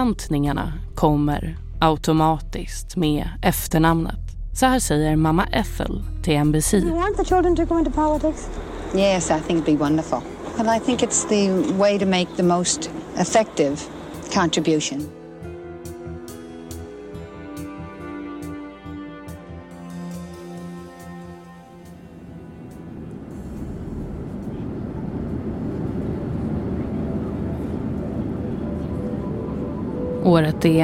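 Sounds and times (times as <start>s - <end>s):
speech: 0.0s - 15.2s, 30.3s - 30.8s
tonal music-like sound: 0.0s - 30.8s
airplane in flight to South Dakota: 7.0s - 15.1s, 19.9s - 30.8s.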